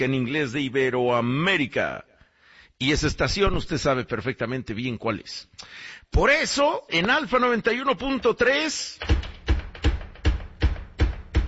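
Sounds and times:
speech: 0.0 - 2.1, 2.8 - 9.3
knocking on a door: 9.0 - 11.4.

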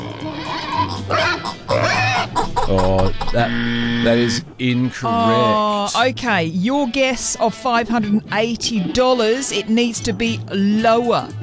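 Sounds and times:
pig oinking and grunting as a piggy bank sound effect: 0.0 - 4.3
speech: 0.8 - 1.6, 2.7 - 11.4.

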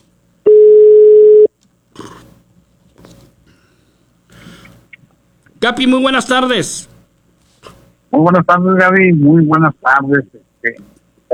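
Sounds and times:
flat steady telephone tone while dialing a call: 0.5 - 1.5
speech: 5.6 - 6.9, 8.2 - 11.0
brief softer burst of telephone line noise: 5.6 - 7.0.

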